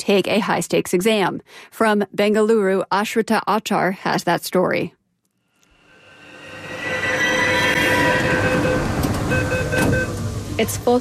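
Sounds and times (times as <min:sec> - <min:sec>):
speech: 0:00.0 - 0:05.0, 0:10.6 - 0:10.9
high electronic tones: 0:05.7 - 0:10.3
metro train rumble: 0:06.4 - 0:10.9
metro train doors opening at a station: 0:07.8 - 0:10.6.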